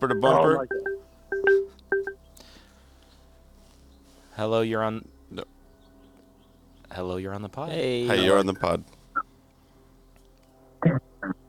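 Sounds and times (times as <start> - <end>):
speech: 0.0 - 0.9, 4.4 - 5.5, 6.9 - 9.0
electronic telephone tones announcing an incoming call: 0.0 - 2.2.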